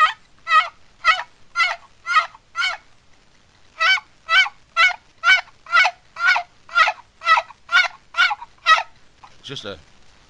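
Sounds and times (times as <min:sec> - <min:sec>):
old turkey box call sounding gobbler yelps: 0:00.0 - 0:02.9, 0:03.8 - 0:09.0
speech: 0:09.5 - 0:10.0.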